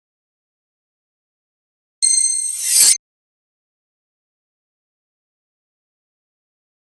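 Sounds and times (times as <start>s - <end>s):
bell chime ding hit: 2.0s - 3.0s
shimmer sweep transition: 2.0s - 3.0s.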